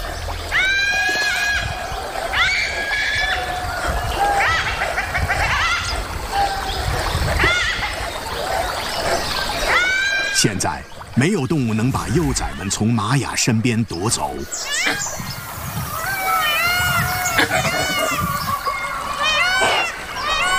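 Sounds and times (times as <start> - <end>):
pack of dholes screaming in alarm: 0.0 - 20.5
speech: 10.4 - 15.4, 17.4 - 18.5.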